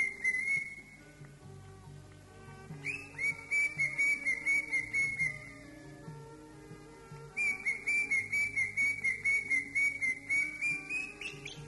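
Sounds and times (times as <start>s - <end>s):
Greater green leafbird singing even clear whistled notes: 0.0s - 1.0s, 2.8s - 5.5s, 7.4s - 11.6s
low background noise: 0.0s - 11.6s.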